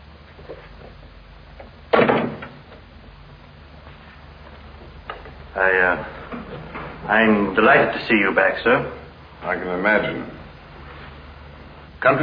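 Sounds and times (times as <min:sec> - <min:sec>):
door banging shut: 0:01.9 - 0:02.7
speech: 0:05.6 - 0:06.2, 0:07.1 - 0:10.4, 0:12.0 - 0:12.2.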